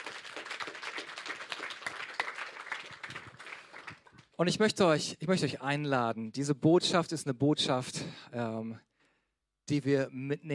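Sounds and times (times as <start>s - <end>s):
church audience applause: 0.0s - 4.3s
speech: 4.4s - 8.9s, 9.7s - 10.5s.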